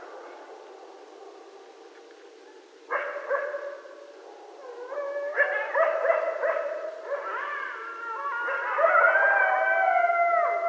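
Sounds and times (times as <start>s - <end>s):
quiet background hiss: 0.0s - 10.6s
coyote wavering howl-like call: 4.5s - 10.6s.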